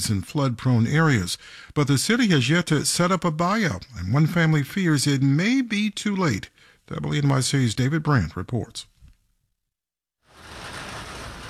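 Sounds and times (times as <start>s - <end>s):
speech: 0.0s - 8.9s
heavy rain pelting the sidewalk along a street in Hollis, Queens: 10.3s - 11.4s.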